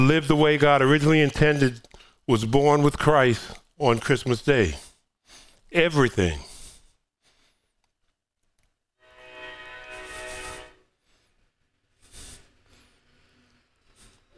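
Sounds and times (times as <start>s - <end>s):
speech: 0.0s - 4.9s, 5.7s - 6.5s
passing train horn: 9.0s - 10.9s.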